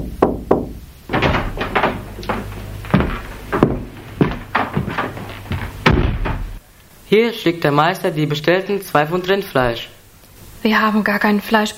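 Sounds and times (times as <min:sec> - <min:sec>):
low steady hum: 0:00.0 - 0:07.0
knocking on a door: 0:00.2 - 0:06.6
speech: 0:07.2 - 0:09.9, 0:10.6 - 0:11.7.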